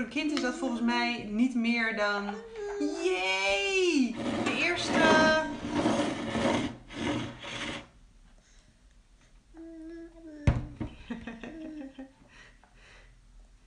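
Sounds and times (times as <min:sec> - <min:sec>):
speech: 0:00.0 - 0:06.1
child babbling: 0:02.4 - 0:03.2, 0:09.5 - 0:10.6
child scraping and rubbing a plate: 0:03.9 - 0:08.0.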